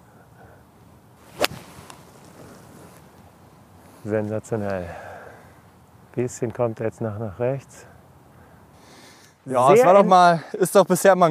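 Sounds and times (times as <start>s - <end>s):
faint outdoor noise on a golf course: 0.0s - 11.2s
golf club swing striking a golf ball on the course: 1.4s - 2.0s
speech: 4.0s - 5.1s, 6.2s - 7.9s, 9.5s - 11.2s.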